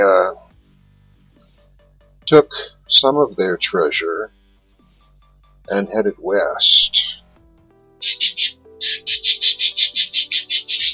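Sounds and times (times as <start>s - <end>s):
speech: 0.0s - 0.4s, 2.3s - 4.4s, 5.7s - 7.2s
pet birds chirping: 2.3s - 4.3s, 5.7s - 7.4s, 8.0s - 10.9s.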